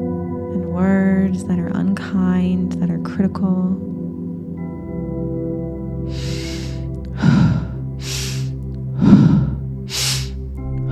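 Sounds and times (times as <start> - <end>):
soft steady musical drone: 0.0 - 10.9
speech: 0.8 - 3.9
deep breathwork breathing: 6.0 - 10.9.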